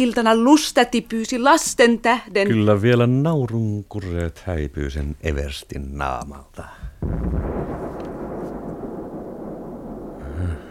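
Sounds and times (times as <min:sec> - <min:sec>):
speech: 0:00.0 - 0:07.9
bomb explosion rumbling roar during an air raid: 0:07.0 - 0:10.6.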